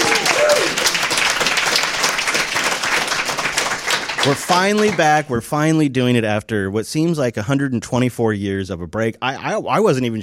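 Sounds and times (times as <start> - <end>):
crowd cheering and whooping: 0.0 - 1.4
live crowd applauding: 0.0 - 5.3
speech: 4.2 - 10.2.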